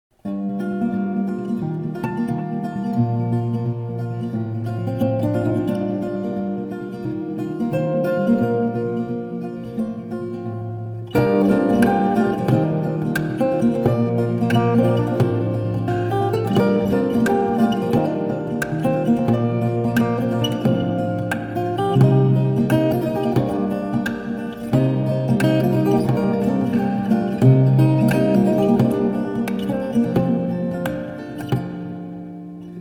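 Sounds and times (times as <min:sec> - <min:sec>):
acoustic guitar ringtone: 0:00.3 - 0:32.7.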